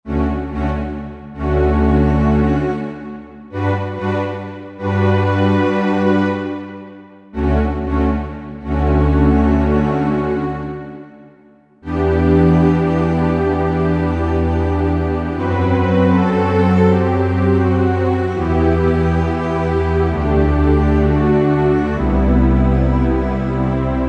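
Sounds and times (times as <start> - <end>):
warm strings on a Roland JV-2080 synthesizer: 0.1 - 24.0.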